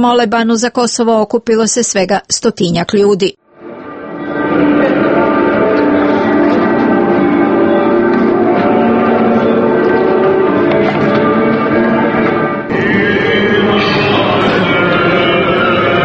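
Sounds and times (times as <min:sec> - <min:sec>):
speech: 0:00.0 - 0:03.4
church bells ringing: 0:03.6 - 0:16.0.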